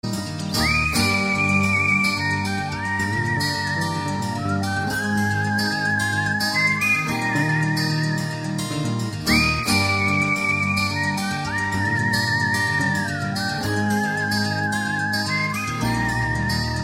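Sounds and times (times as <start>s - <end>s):
whistle: 0.0s - 16.8s.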